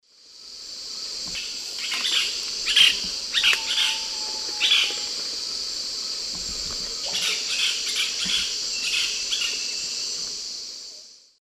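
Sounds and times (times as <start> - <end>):
Celeus grammicus group calls in South American eastern lowlands: 1.4 - 5.3, 7.1 - 10.0.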